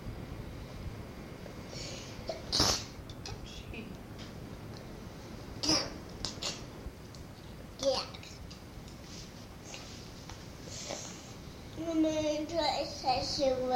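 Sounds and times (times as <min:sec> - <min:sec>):
quiet hum: 0:00.0 - 0:13.7
child sneezing: 0:02.3 - 0:03.0, 0:05.6 - 0:06.7.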